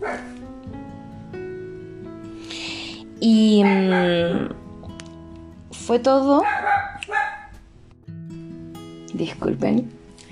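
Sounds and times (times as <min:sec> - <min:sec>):
small female pet dog yapping: 0:00.0 - 0:00.4, 0:03.6 - 0:04.5, 0:06.4 - 0:07.6
speech: 0:03.2 - 0:04.5, 0:05.9 - 0:06.6, 0:09.2 - 0:10.0.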